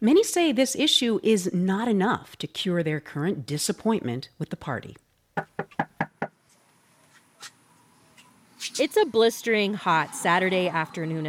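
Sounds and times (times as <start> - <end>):
speech: 0.0 - 5.8, 8.7 - 11.2
firm knocking on a front door: 5.4 - 6.4.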